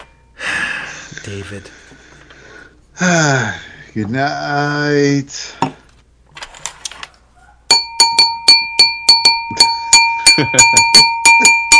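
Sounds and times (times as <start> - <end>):
speech: 1.2 - 2.0, 3.0 - 5.7, 10.4 - 11.0
glass ringing when struck: 7.7 - 11.7.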